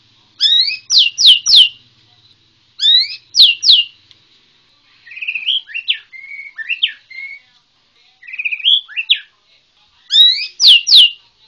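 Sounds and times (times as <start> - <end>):
White-rumped shama loud ringing downslurred whistles in Borneo: 0.4 - 1.8, 2.8 - 3.9, 5.2 - 7.4, 10.1 - 11.2
White-rumped shama singing soft warbled phrases in Borneo: 0.4 - 4.0, 5.0 - 9.4, 10.0 - 11.3.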